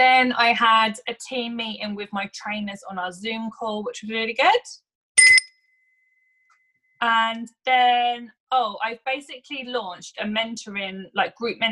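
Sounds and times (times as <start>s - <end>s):
speech: 0.0s - 4.8s, 7.0s - 11.6s
bell ringing: 5.2s - 5.5s.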